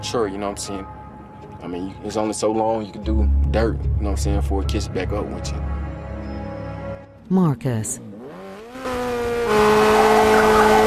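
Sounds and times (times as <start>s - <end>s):
speech: 0.0s - 1.0s, 1.6s - 5.7s, 7.3s - 8.1s
motorbike engine revving and roaring off: 8.0s - 10.8s
motorbike back wheel screeching in a spin: 8.9s - 10.8s.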